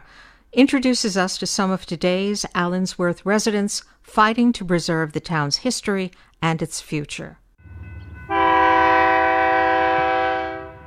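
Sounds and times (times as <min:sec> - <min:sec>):
speech: 0:00.5 - 0:07.4
low rumble of rolling passenger rail cars in California: 0:07.6 - 0:10.8
passenger train horn blaring in California: 0:07.6 - 0:10.8.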